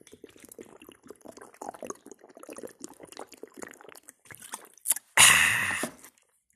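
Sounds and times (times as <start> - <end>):
person drinking water from a plastic bottle: 1.4 - 6.2.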